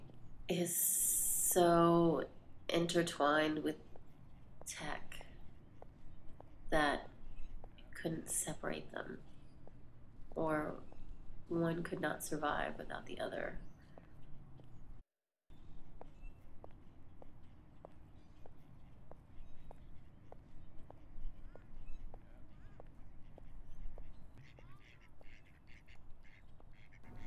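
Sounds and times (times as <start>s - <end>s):
steady outdoor ambience: 0.0s - 27.2s
speech: 0.5s - 3.9s, 4.7s - 5.2s, 6.7s - 7.1s, 8.0s - 9.3s, 10.4s - 10.9s, 11.5s - 13.7s
ducks quacking: 24.4s - 27.2s.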